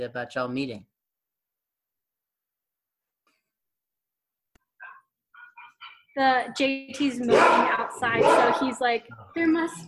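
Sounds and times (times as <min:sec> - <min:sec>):
speech: 0:00.0 - 0:00.9, 0:06.2 - 0:09.8
dog barking yips: 0:07.3 - 0:08.8.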